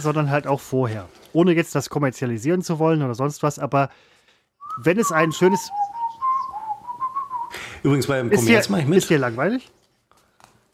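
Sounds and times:
speech: 0.0s - 4.2s, 4.8s - 5.9s, 7.8s - 9.8s
person whistling a short wavering melody: 4.6s - 7.6s.

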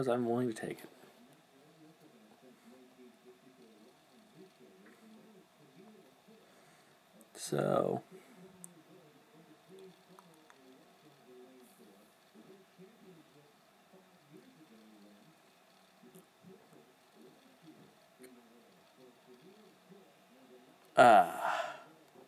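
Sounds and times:
speech: 0.0s - 1.0s, 7.4s - 8.2s, 21.0s - 21.6s
long muffled yawn behind closed lips: 21.0s - 21.9s.

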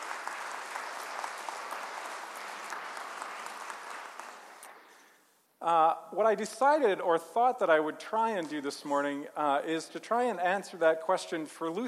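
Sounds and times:
large group applauding in a big room: 0.0s - 5.0s
speech: 5.6s - 11.8s.

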